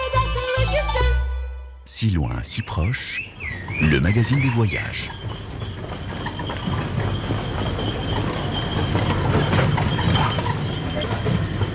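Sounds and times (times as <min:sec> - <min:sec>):
street ambience on an island without motor vehicles: 0:00.0 - 0:11.7
speech: 0:01.9 - 0:05.4
carriage wheels rumbling: 0:03.2 - 0:11.7
horse's hooves clip-clopping pulling a carriage: 0:03.2 - 0:11.7.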